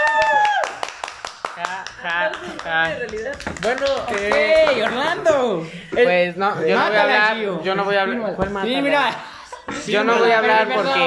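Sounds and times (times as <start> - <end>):
a few people clapping: 0.0 - 5.4
speech: 1.6 - 9.2, 9.8 - 11.0
voices talking and laughing: 2.1 - 11.0.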